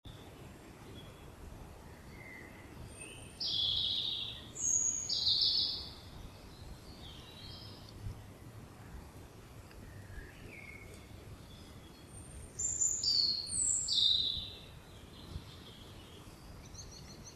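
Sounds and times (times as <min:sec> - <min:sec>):
European robin Erithacus rubecula warbled song: 0:02.8 - 0:07.9, 0:10.0 - 0:17.3.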